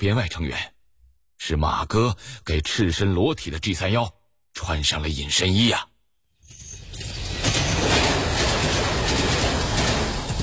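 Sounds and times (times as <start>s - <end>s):
speech: 0.0s - 0.8s, 1.4s - 5.9s
high-speed train bound for Dalian running on rails: 6.7s - 10.4s.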